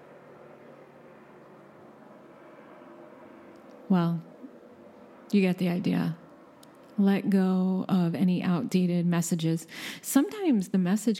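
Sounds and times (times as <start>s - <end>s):
airplane flying overhead with a low droning roar: 0.0s - 9.0s
speech: 3.9s - 4.3s, 5.3s - 6.2s, 7.0s - 11.1s.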